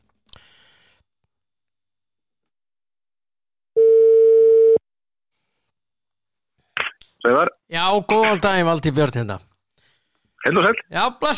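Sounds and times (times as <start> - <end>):
telephone ringback tone while calling someone: 3.8 - 4.8
speech: 7.3 - 9.5, 10.4 - 11.3.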